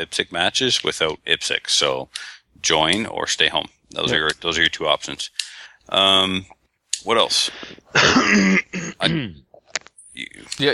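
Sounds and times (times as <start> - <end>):
speech: 0.0 - 9.4, 10.2 - 10.7
person coughing into briefly unmuted microphone: 7.9 - 9.5.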